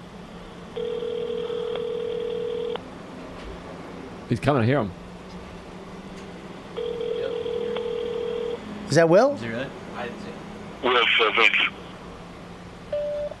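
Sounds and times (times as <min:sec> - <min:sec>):
electronic telephone busy line tone: 0:00.8 - 0:02.8, 0:06.8 - 0:08.6
speech: 0:04.3 - 0:05.0, 0:08.9 - 0:11.8.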